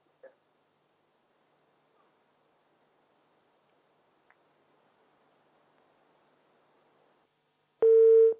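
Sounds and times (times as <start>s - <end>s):
telephone tone after a call is cut off: 7.8s - 8.3s.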